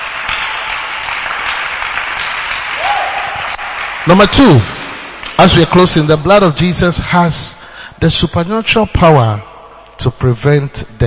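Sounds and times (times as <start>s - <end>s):
large audience clapping: 0.0s - 5.6s
speech: 4.0s - 4.8s, 5.4s - 11.0s.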